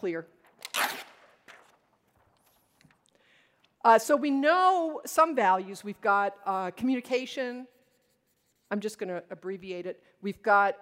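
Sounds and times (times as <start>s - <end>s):
speech: 0.0s - 0.9s, 3.8s - 7.8s, 8.7s - 10.8s
new sheet of paper rustling: 0.5s - 3.1s.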